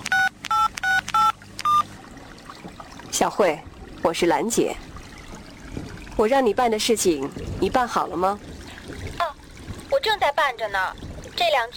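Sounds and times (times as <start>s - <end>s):
touch-tone beeps of a phone number being dialed: 0.0s - 1.9s
speech: 3.2s - 4.9s, 6.2s - 8.5s, 10.0s - 11.7s.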